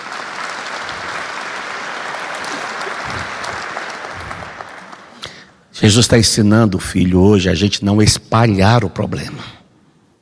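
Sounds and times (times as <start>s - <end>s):
large crowd applauding: 0.0s - 5.5s
speech: 5.8s - 9.6s.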